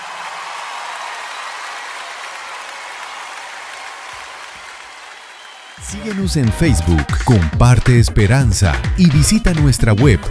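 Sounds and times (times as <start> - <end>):
audience applause from a sizable crowd: 0.0 - 8.0
speech: 5.8 - 10.2.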